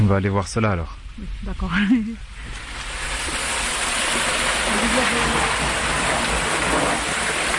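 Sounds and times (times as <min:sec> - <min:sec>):
speech: 0:00.1 - 0:03.4
water flowing out of an underground gallery that feeds a reservoir: 0:02.2 - 0:07.5.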